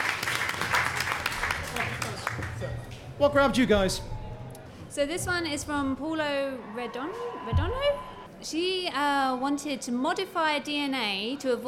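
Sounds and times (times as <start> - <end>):
audience applause: 0.0 - 2.9
speech: 3.2 - 4.1, 5.0 - 11.6.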